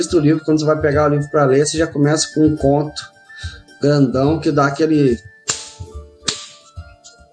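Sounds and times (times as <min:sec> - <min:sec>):
speech: 0:00.0 - 0:05.3
cartoonish punch-in-the-face smacks with bassy thud: 0:05.5 - 0:06.7.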